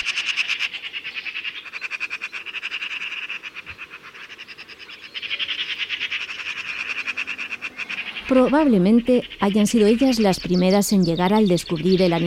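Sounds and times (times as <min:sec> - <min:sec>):
noisy group of magpies chattering and squawking: 0:00.0 - 0:12.2
speech: 0:08.3 - 0:12.2.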